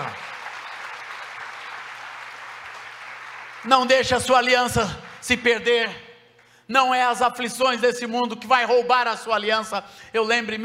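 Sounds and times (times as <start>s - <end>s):
audience applauding: 0.0s - 5.2s
speech: 3.6s - 6.0s, 6.7s - 10.6s.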